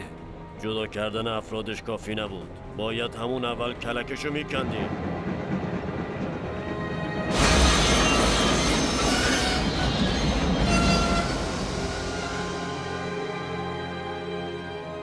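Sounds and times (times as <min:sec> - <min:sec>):
speech: 0:00.6 - 0:05.1
train rumbling along the rails: 0:03.3 - 0:14.4
train grinding brakes and squealing wheels: 0:07.5 - 0:12.9.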